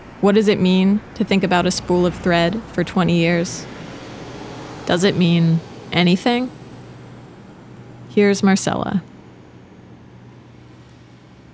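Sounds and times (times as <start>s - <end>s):
broad road noise: 0.0s - 11.5s
bus engine rumbling: 0.0s - 11.5s
speech: 0.2s - 3.8s, 4.9s - 6.6s, 8.2s - 9.1s.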